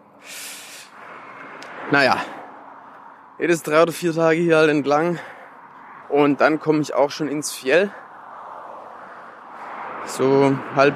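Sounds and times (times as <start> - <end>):
passing vehicle with a loud hissing whoosh: 0.0 - 10.9
steady broadband roar of tires and engines on the road: 0.0 - 10.9
speech: 1.9 - 2.4, 3.4 - 5.3, 6.1 - 8.0, 10.2 - 10.9.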